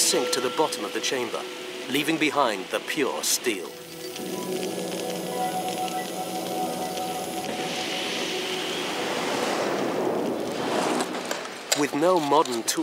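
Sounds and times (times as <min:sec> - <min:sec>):
speech: 0:00.1 - 0:04.8, 0:11.8 - 0:12.8
roaring fire in a steel-smelting furnace burning at over 1,000 degrees: 0:03.7 - 0:12.3.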